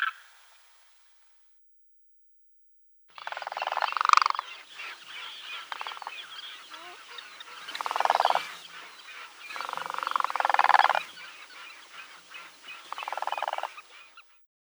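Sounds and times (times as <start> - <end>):
Demoiselle crane giving rattling, purring calls in a busy overlapping chorus: 3.2 - 14.2.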